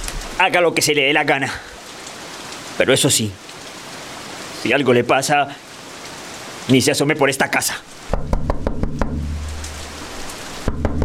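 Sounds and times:
rain-like hiss: 0.0s - 11.0s
speech: 0.4s - 1.8s, 2.8s - 3.6s, 4.6s - 5.6s, 6.7s - 8.4s
heavy rapid pounding on a door: 8.1s - 9.5s, 10.6s - 11.0s
low rumble: 9.0s - 11.0s.

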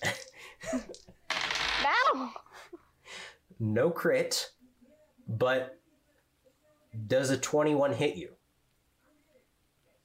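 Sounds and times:
dice rolling for a tabletop role-playing game: 0.0s - 1.8s
speech: 3.6s - 4.6s, 5.3s - 5.8s, 6.9s - 8.4s.

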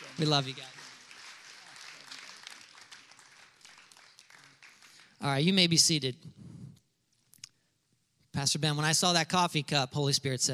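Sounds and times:
crowd applauding: 0.0s - 5.3s
speech: 0.2s - 0.8s, 5.2s - 6.5s, 8.4s - 10.5s.

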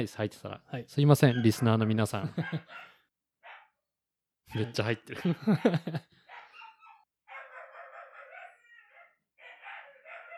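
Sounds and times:
speech: 0.0s - 2.9s, 4.5s - 6.2s
dog barking: 1.3s - 3.8s, 4.5s - 5.5s, 6.3s - 10.3s
laughter: 1.9s - 2.9s, 4.6s - 6.2s.

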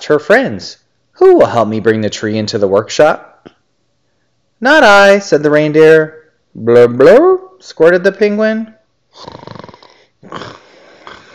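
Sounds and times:
speech: 0.1s - 3.3s, 4.6s - 9.5s
voice imitating a hare snoring: 9.1s - 11.3s.

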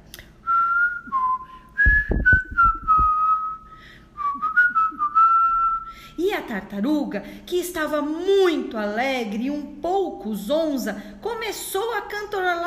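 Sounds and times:
person whistling a lively festive samba melody: 0.4s - 6.0s
soft low thumps: 1.8s - 3.4s
speech: 6.2s - 12.6s.

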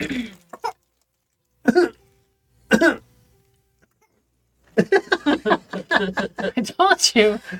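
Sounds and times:
toddler fake coughing for attention: 1.6s - 2.0s
laughter: 4.8s - 6.8s
speech: 6.0s - 7.5s.

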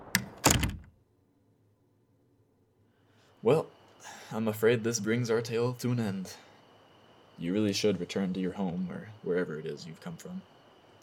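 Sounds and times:
garage door latch click: 0.0s - 0.9s
speech: 3.4s - 6.5s, 7.4s - 10.5s.

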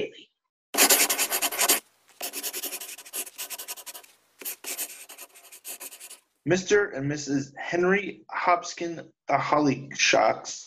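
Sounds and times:
pen writing a name in a book: 0.8s - 6.2s
speech: 6.4s - 10.6s.

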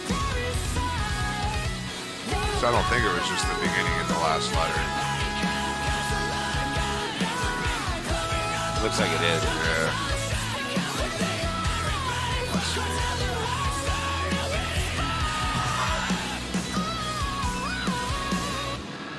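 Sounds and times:
heavy distorted guitars: 0.0s - 19.1s
melodic sung vocal line: 0.0s - 19.1s
post-hardcore song with heavy distorted guitars and pounding drums: 0.0s - 19.1s
speech: 2.6s - 5.5s, 8.8s - 10.1s
harsh screamed vocals: 4.6s - 18.8s.

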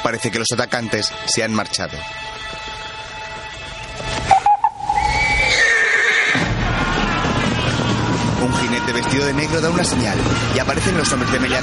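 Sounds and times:
speech: 0.1s - 2.9s, 8.9s - 11.6s
horse hooves stamping and shuffling on forest ground: 1.0s - 11.6s
horses snorting in a dense forest: 4.3s - 8.3s
horses whinnying and neighing in a dense forest: 4.3s - 9.2s.

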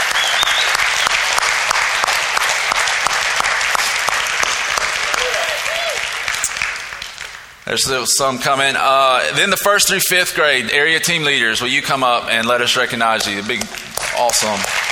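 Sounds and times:
sharp individual claps: 0.0s - 7.5s
room full of people clapping: 0.0s - 7.6s, 13.2s - 14.8s
faint whistle-like chirps: 0.1s - 1.1s
speech: 7.7s - 14.8s.

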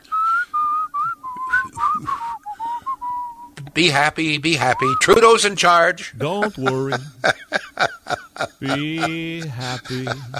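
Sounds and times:
person whistling a bright bouncy melody: 0.0s - 3.6s
speech: 3.8s - 7.5s, 8.6s - 10.3s
laughter: 6.2s - 10.3s.

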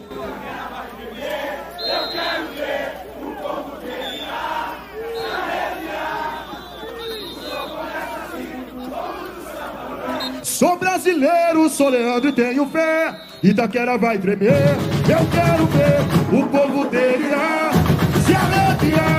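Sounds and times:
huge samba school crowd singing and shouting: 0.0s - 19.1s
speech: 10.6s - 17.6s.

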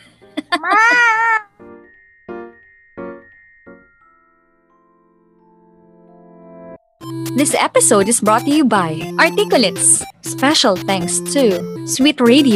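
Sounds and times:
person loudly imitating a cat meowing: 0.6s - 1.5s
speech: 7.4s - 12.5s.

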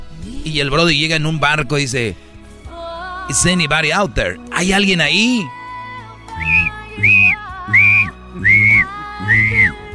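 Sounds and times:
speech: 0.2s - 2.3s, 3.3s - 5.6s
whistle blasts: 6.4s - 9.8s.

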